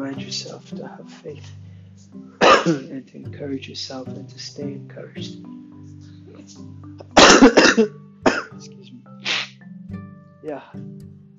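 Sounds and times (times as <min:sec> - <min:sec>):
speech: 0:00.2 - 0:08.8, 0:10.4 - 0:11.0
person coughing: 0:02.4 - 0:03.0, 0:07.1 - 0:09.6.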